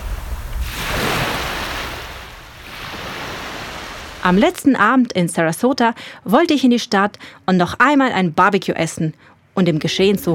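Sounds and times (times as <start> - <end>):
steady roar of surf: 0.0 - 4.3
ocean waves washing onto a beach near Siesta Key Sarasota: 0.0 - 4.4
speech: 4.2 - 10.3.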